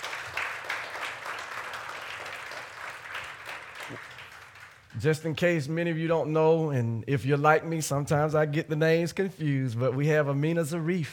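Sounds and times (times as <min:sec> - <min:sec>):
audience at a church service clapping: 0:00.0 - 0:05.5
speech: 0:03.9 - 0:04.1, 0:04.9 - 0:11.1.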